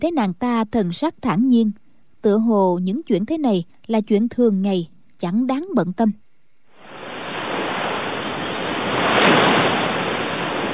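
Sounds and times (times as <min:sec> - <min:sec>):
speech: 0:00.0 - 0:06.2
distant rumbling roar of the night tide on the Qiantang River: 0:06.7 - 0:10.7.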